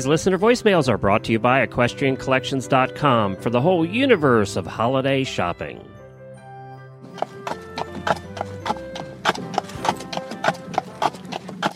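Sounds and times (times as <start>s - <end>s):
speech: 0.0s - 6.0s
horse hooves clip-clopping on a hard surface during a carriage drive: 7.1s - 11.7s
faint low rumble of moving carriage wheels: 7.2s - 11.7s.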